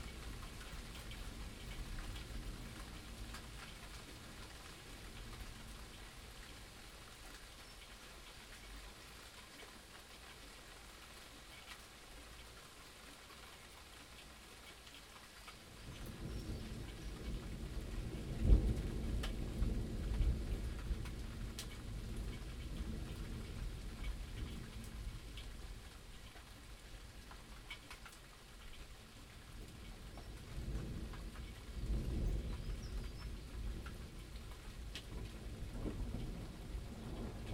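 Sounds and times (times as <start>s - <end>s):
rain dripping through gaps onto shelves, pots and floor of a broken greenhouse: 0.0s - 37.5s
low rumble of thunder in a summer storm: 15.8s - 25.9s, 29.9s - 37.5s.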